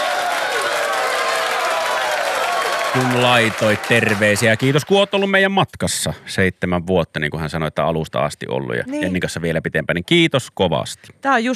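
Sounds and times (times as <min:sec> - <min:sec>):
audience applause: 0:00.0 - 0:05.4
speech: 0:02.9 - 0:11.5.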